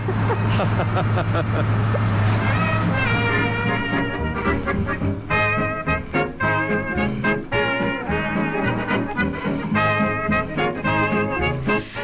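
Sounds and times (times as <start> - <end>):
laughter: 0.0 - 2.2
heavy farm tractors running at a straw festival: 0.0 - 12.0
straw cannon blowing powered by tractors: 0.0 - 12.0.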